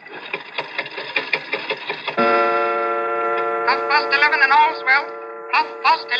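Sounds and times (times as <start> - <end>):
antique London clock mechanism clicking as hand is pushed forward: 0.1 - 2.5
antique London clock chime ringing: 2.2 - 6.1
speech: 3.9 - 6.1.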